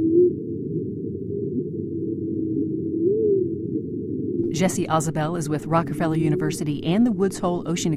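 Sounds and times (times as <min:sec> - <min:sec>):
humpback whale song: 0:00.0 - 0:04.5
speech: 0:04.6 - 0:07.9.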